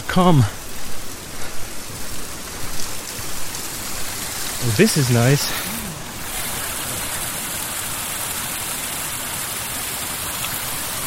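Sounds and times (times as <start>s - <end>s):
speech: 0.2s - 0.6s, 4.6s - 5.7s
small stream splashing over a rock: 2.4s - 11.0s.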